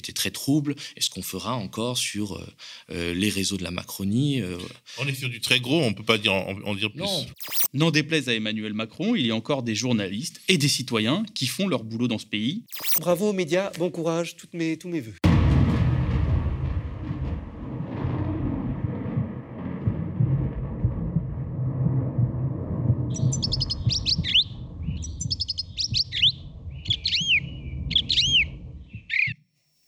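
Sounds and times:
speech: 0.0 - 15.3
small birds chirping: 7.2 - 7.7, 12.7 - 13.0, 23.1 - 29.8
low rumble: 15.4 - 29.2.

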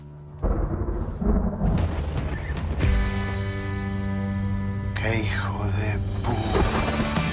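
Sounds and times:
deep rumbling thunder of an approaching hailstorm: 0.4 - 3.7
speech: 5.0 - 7.2.

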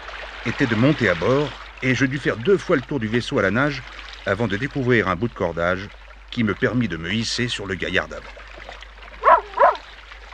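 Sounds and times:
speech: 0.4 - 8.4
dog barking: 9.2 - 9.9.

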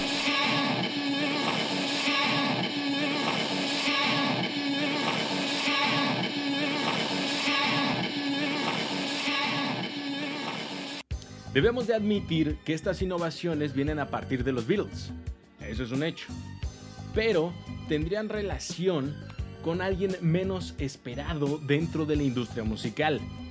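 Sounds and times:
music looping from the locked groove of a vinyl album: 0.0 - 11.1
speech: 11.6 - 16.5, 17.2 - 23.4.

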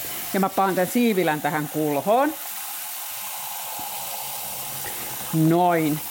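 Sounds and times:
hot tap water running into a bowl: 0.0 - 6.0
speech: 0.3 - 2.5, 5.3 - 6.0.

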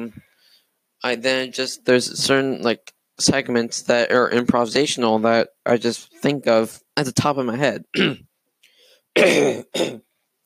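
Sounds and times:
speech: 0.0 - 0.2, 1.0 - 8.3, 9.2 - 10.1
coughing into microphone: 7.9 - 8.3, 9.2 - 10.1.

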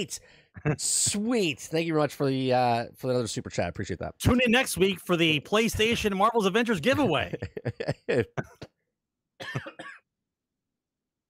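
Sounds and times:
speech: 0.0 - 8.7
laughter: 0.6 - 0.9, 5.7 - 8.6
throat clearing: 8.1 - 8.7, 9.4 - 10.0
harsh coughs: 9.4 - 10.1.

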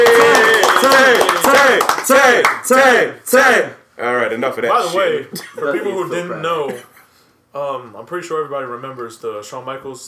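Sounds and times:
voices cheering and whooping: 0.0 - 1.6
hands clapping: 0.0 - 2.9
speech: 1.8 - 6.9, 7.6 - 10.0.

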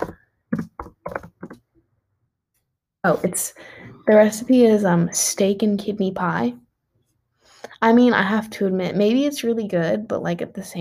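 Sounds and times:
keyboard typing: 0.0 - 1.6
speech: 3.0 - 6.6, 7.8 - 10.8.

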